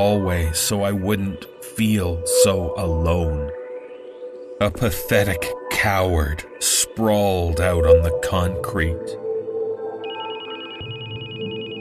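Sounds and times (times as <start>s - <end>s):
speech: 0.0s - 3.6s, 4.6s - 9.2s
electronic phone ringtone: 10.0s - 11.7s.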